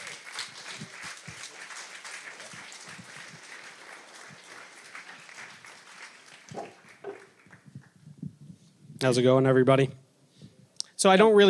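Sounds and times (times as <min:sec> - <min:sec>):
audience applauding: 0:00.0 - 0:08.0
scattered louder claps: 0:00.0 - 0:08.0
speech: 0:09.0 - 0:10.0, 0:11.0 - 0:11.4.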